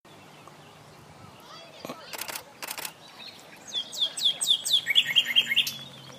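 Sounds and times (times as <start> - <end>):
common nightingale sharp clicks: 2.1 - 3.0
common nightingale Luscinia megarhynchos singing whistled notes: 3.0 - 6.1.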